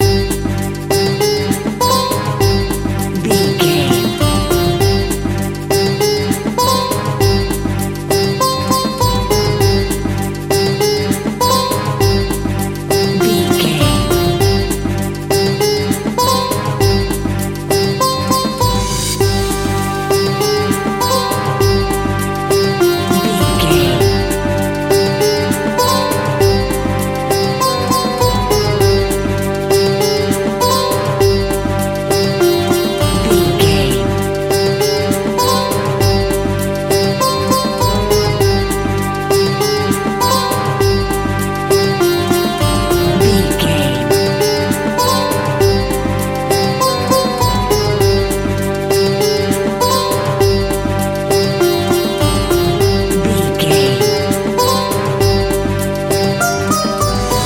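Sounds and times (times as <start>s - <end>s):
groovy exotic world music with an Indian soundscape feel: 0.0s - 57.4s.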